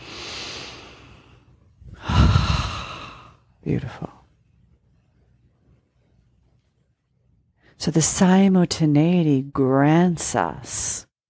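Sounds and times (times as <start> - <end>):
deep breath drawn into the belly and released: 0.0 - 3.5
speech: 3.6 - 4.2, 7.8 - 11.1.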